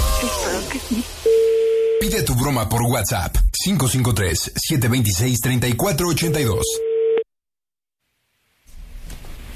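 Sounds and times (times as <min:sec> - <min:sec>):
speech: 0:00.2 - 0:06.8
telephone busy tone after the caller hangs up: 0:06.6 - 0:07.2.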